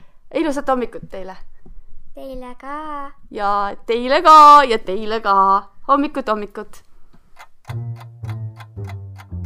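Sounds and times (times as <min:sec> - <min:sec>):
speech: 0:00.4 - 0:01.5, 0:02.2 - 0:06.8
clock ticking: 0:07.4 - 0:09.4.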